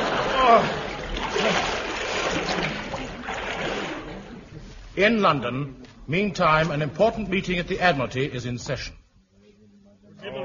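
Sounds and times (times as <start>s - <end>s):
horse plunging into deep water: 0.0s - 4.3s
speech: 0.5s - 0.8s, 5.0s - 9.0s.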